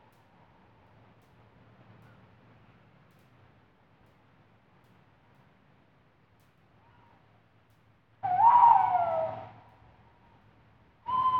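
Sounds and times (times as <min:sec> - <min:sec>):
tawny owl hooting at night: 0:08.2 - 0:09.6, 0:11.1 - 0:11.3.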